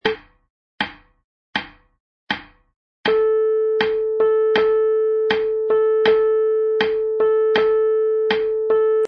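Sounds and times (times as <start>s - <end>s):
MIDI piano playing tied quarter and eighth notes: 3.1s - 9.0s.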